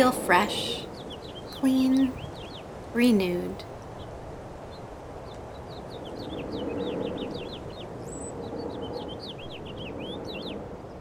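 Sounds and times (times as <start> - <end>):
speech: 0.0 - 0.9, 1.6 - 2.3, 2.9 - 3.7
finches chirping: 0.0 - 3.6
steady low rumbling noise: 0.0 - 5.2.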